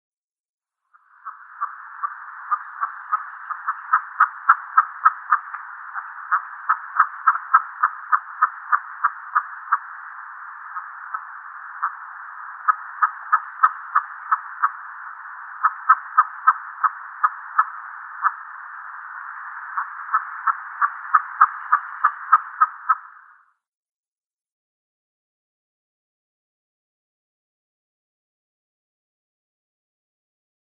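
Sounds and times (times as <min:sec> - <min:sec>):
female capercaillie calling: 0:00.9 - 0:23.5.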